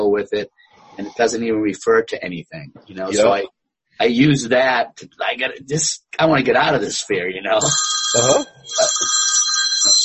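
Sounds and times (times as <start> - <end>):
speech: 0.1 - 9.2, 9.8 - 10.0
telephone ringing with a bright electronic trill: 7.6 - 10.0.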